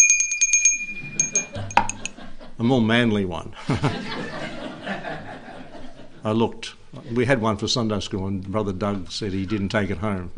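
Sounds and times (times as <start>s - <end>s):
small bell ringing: 0.0s - 2.1s
laughter: 1.4s - 2.6s, 3.6s - 6.2s
speech: 2.6s - 4.6s, 6.2s - 10.3s.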